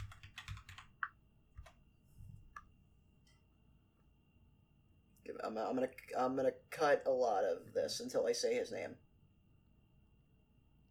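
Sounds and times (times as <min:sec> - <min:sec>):
computer keyboard typing during a quick online search: 0:00.0 - 0:01.8
speech: 0:05.3 - 0:09.0.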